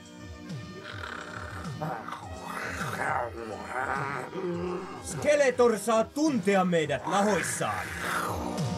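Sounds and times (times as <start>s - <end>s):
tiger roaring: 0.8s - 5.4s, 7.0s - 8.6s
speech: 1.8s - 2.2s, 3.7s - 8.4s.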